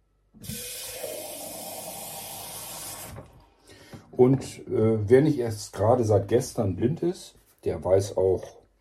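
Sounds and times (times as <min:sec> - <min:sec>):
tap water gushing into a small cup kettle: 0:00.4 - 0:03.4
speech: 0:04.2 - 0:08.6.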